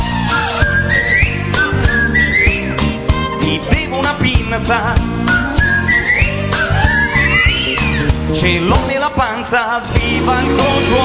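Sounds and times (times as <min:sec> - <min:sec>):
band bass: 0:00.0 - 0:11.0
person whistling a bright sliding melody: 0:00.3 - 0:03.8, 0:05.2 - 0:08.1
speech: 0:04.6 - 0:05.1, 0:08.4 - 0:11.0.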